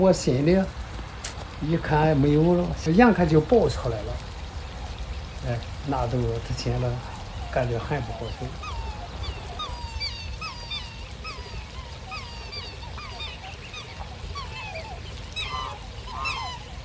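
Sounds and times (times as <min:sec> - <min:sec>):
speech: 0:00.0 - 0:00.8, 0:01.6 - 0:04.3, 0:05.4 - 0:08.7
black swan parent bird calling with bugling honks: 0:07.2 - 0:16.8.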